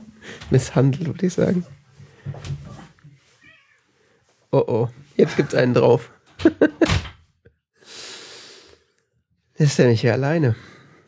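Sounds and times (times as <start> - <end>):
speech: 0.5 - 2.5, 4.5 - 7.0, 9.6 - 10.8
cat meowing: 3.3 - 3.9.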